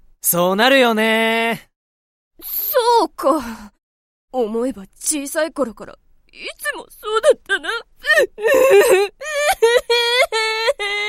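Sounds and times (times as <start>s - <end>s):
speech: 0.3s - 1.7s, 2.4s - 11.0s
person crying and whimpering in quavering sobs: 7.5s - 11.0s.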